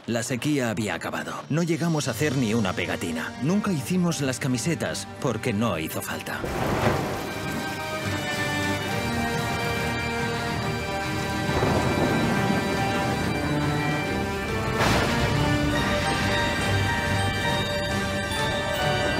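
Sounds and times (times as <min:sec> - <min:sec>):
speech: 0:00.1 - 0:07.2
low rolls of thunder rumbling: 0:06.4 - 0:19.1
steady rain pouring down: 0:06.4 - 0:19.1.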